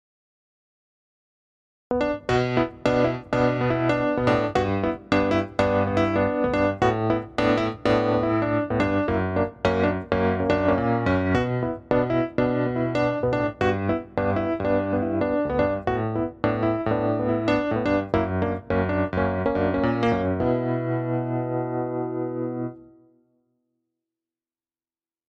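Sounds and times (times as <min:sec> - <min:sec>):
electric grand piano: 0:01.9 - 0:22.9.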